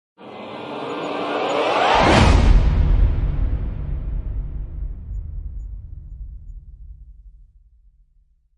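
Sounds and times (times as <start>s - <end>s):
short vocal riser: 0.2s - 3.0s.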